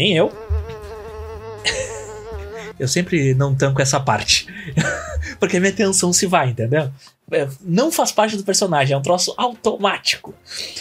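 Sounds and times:
speech: 0.0s - 0.5s, 2.8s - 10.8s
fly buzzing sound effect: 0.0s - 2.8s
laughter: 1.6s - 2.8s, 4.5s - 5.4s.

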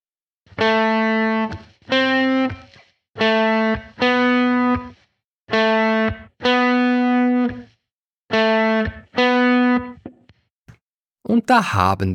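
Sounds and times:
electric guitar notes on the fourth string ninth fret through distortion effects: 0.5s - 7.7s, 8.3s - 10.2s
speech: 11.5s - 12.1s.

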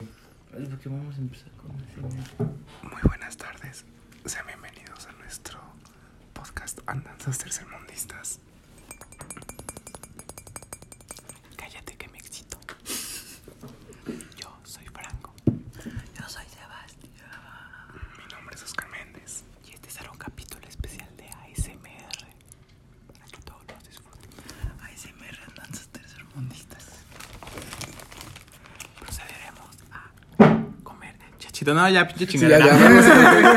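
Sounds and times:
speech: 0.6s - 8.6s, 31.7s - 33.5s
breathy ASMR whispering for an introduction: 2.8s - 8.4s, 11.6s - 12.6s, 14.3s - 15.4s, 16.1s - 22.4s, 23.1s - 27.1s, 29.0s - 30.2s
light clinks: 8.7s - 11.5s
laughter: 32.4s - 33.5s.

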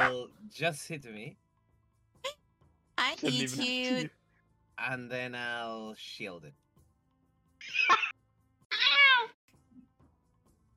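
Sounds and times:
speech: 0.5s - 1.4s, 3.1s - 4.2s, 4.8s - 6.6s, 7.6s - 8.2s
cat meowing angrily: 8.7s - 9.4s.

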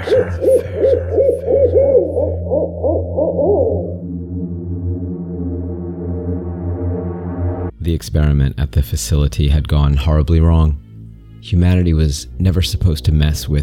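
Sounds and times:
owl hooting: 0.0s - 4.9s
steady low droning hum: 0.0s - 7.8s
speech: 0.1s - 1.5s, 7.9s - 10.8s, 11.4s - 13.6s.

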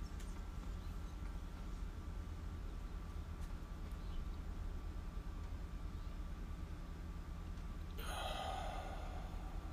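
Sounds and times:
steady low hum: 0.0s - 9.7s
deep slow breathing exercise: 7.9s - 9.7s.

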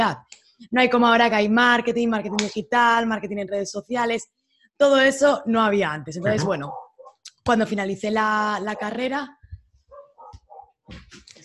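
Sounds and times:
speech: 0.0s - 6.8s, 7.4s - 9.4s, 10.9s - 11.1s
dog barking and yipping: 6.6s - 7.2s, 8.7s - 9.1s, 9.9s - 10.8s
dog whining: 6.6s - 7.2s.

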